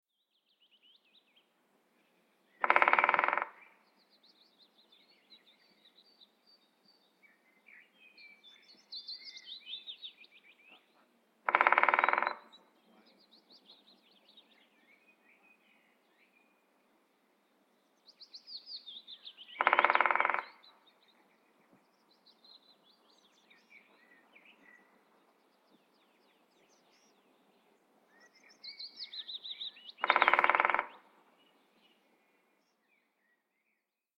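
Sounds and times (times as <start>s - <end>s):
great spotted woodpecker drumming: 2.6s - 3.6s, 11.4s - 12.6s, 19.6s - 20.7s, 30.0s - 31.1s.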